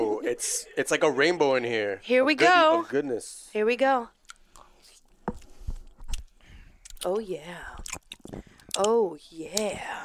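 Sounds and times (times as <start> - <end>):
speech: 0.3 - 4.2, 7.0 - 10.0
soft chewing of mushy food infused with coconut vodka: 4.2 - 7.0, 7.8 - 8.8.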